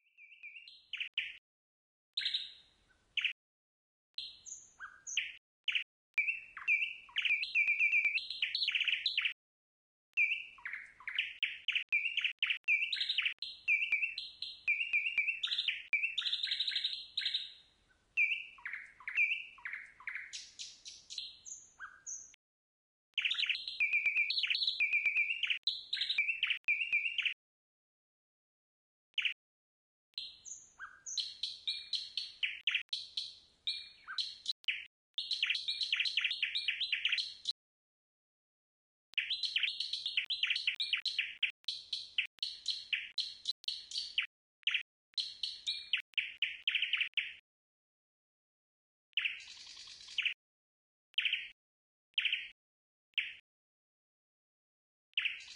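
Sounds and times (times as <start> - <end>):
nightingale singing: 0.1 - 1.4, 2.2 - 3.4, 4.2 - 9.4, 10.2 - 22.4, 23.1 - 27.4, 29.1 - 29.4, 30.2 - 37.6, 39.1 - 47.4, 49.2 - 50.4, 51.2 - 51.6, 52.2 - 53.4, 55.2 - 55.5.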